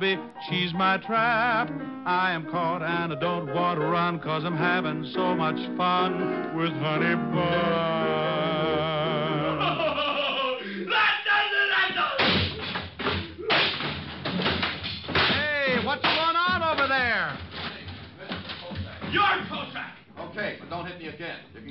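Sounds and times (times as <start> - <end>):
speech: 0.0 - 8.3, 20.8 - 21.6
laughter: 9.3 - 10.9
people shouting and grunting: 10.3 - 14.0, 18.9 - 19.9
punches landing in a fistfight: 12.1 - 19.8.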